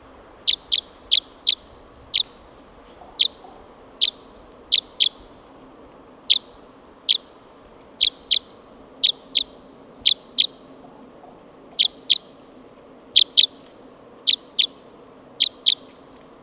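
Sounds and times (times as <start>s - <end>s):
crossbill type N04 flight calls: 0.0s - 2.4s, 3.2s - 5.3s, 6.2s - 7.4s, 8.0s - 10.6s, 11.7s - 13.6s, 14.2s - 14.8s, 15.4s - 15.9s.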